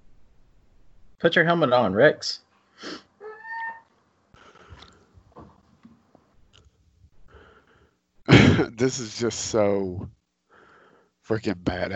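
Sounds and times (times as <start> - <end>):
speech: 1.2 - 3.0, 8.6 - 10.2, 11.3 - 11.9
labored wheezy breathing into the microphone: 4.4 - 5.2, 7.2 - 8.0, 10.5 - 11.2.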